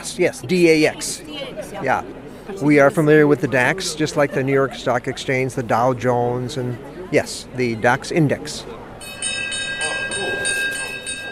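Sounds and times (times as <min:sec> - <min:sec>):
speech: 0:00.1 - 0:08.8
laughter: 0:01.5 - 0:06.9
Frankfurt stock exchange bell ringing in the trading day: 0:09.0 - 0:11.3.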